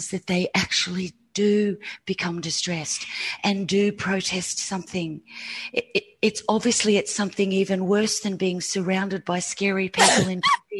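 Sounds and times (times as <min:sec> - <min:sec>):
speech: 0:00.0 - 0:10.7
loud sneeze: 0:10.0 - 0:10.4.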